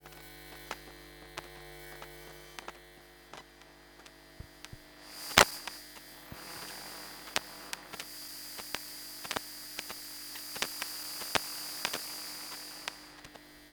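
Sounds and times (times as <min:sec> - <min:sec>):
long buzzing and soft popping of a power glitch: 0:00.2 - 0:13.7.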